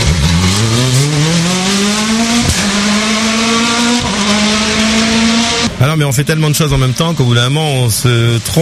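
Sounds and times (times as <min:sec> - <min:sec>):
car engine revving through gear shifts: 0:00.0 - 0:08.6
speech: 0:06.0 - 0:08.6.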